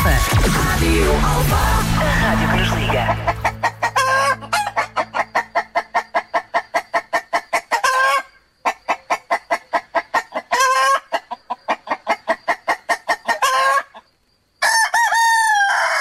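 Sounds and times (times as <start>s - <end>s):
speech: 0.1s - 3.3s
hens clucking rapidly: 0.1s - 14.2s
rooster crowing: 3.0s - 8.3s, 14.6s - 16.0s.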